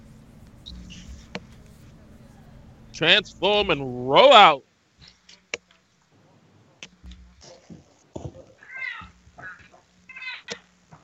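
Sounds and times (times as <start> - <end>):
low hum: 0.0 - 11.0
speech: 3.0 - 4.7
cat meowing in rising wavering cries: 8.6 - 10.6.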